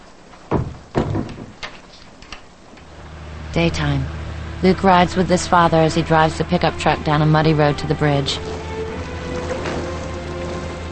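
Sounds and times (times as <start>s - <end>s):
door swinging shut with dull thumps: 0.5s - 2.4s
speech: 3.6s - 8.6s.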